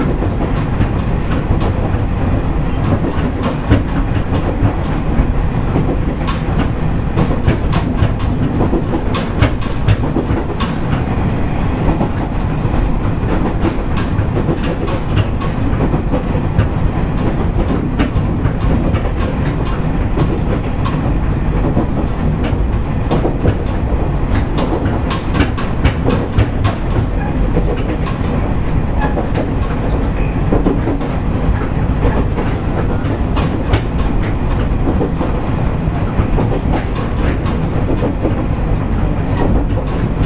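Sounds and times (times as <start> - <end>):
diesel railcar engine rumble: 0.0 - 40.2.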